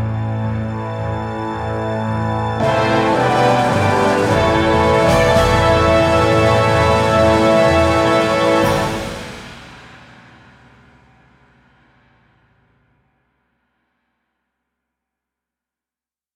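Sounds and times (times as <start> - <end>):
XV-5080 Fantom XR fanfare: 0.1 - 9.8.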